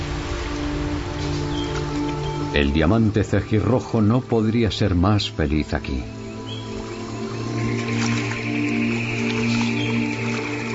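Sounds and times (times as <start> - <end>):
rainwater cascading down over rocks: 0.0 - 4.3, 5.9 - 10.7
speech: 2.6 - 6.2.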